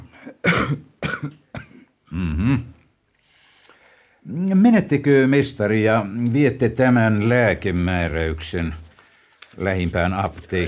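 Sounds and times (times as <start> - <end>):
person coughing: 0.1 - 2.3
speech: 0.2 - 1.4, 4.8 - 8.8, 9.6 - 10.6
soft breath: 3.2 - 4.2.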